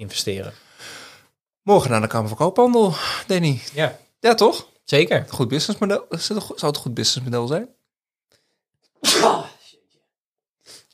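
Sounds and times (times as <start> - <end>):
speech: 0.0 - 1.0, 1.6 - 7.8, 9.0 - 9.5
loud sneeze: 9.0 - 9.7.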